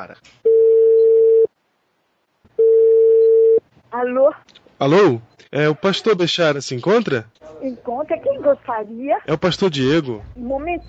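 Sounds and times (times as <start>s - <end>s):
speech: 0.0s - 0.5s, 3.9s - 10.8s
ringing tone of an outgoing telephone call: 0.5s - 1.5s, 2.6s - 3.6s.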